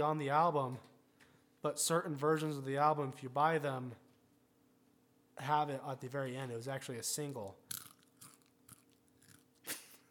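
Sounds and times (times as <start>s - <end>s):
speech: 0.0s - 0.9s, 1.6s - 4.0s, 5.4s - 7.6s
chewing crackles: 7.6s - 10.1s
crunching on a crisp chip: 7.6s - 10.1s.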